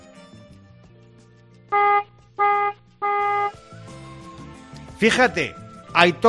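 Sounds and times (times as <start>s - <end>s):
Citroën car horn honks: 1.7s - 3.6s
speech: 5.0s - 6.2s.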